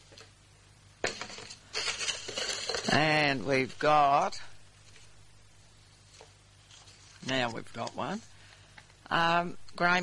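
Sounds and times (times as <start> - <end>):
pot of competition draw entries being stirred: 1.0 - 3.3
speech: 2.9 - 4.5, 7.3 - 8.3, 9.1 - 10.0.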